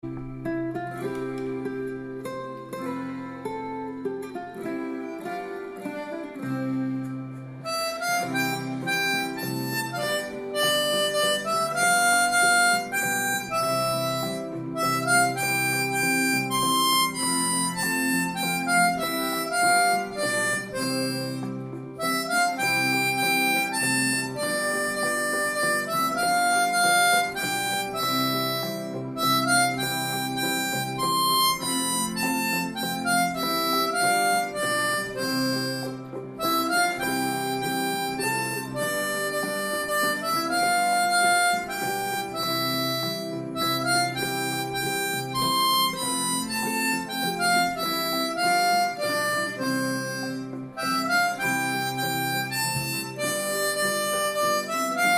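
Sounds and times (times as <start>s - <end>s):
harmonica playing a children's song in C: 0.0s - 55.1s.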